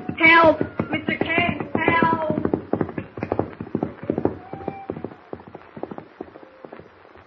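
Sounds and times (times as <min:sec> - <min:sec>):
horse galloping hoofbeats: 0:00.0 - 0:07.2
speech: 0:00.2 - 0:01.0.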